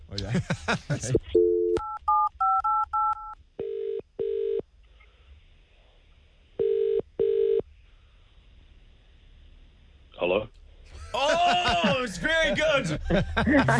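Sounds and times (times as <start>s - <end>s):
laughter: 0.2s - 1.2s, 10.9s - 13.7s
speech: 0.2s - 1.4s, 13.1s - 13.7s
telephone ringing tone: 1.4s - 4.6s, 6.6s - 7.6s.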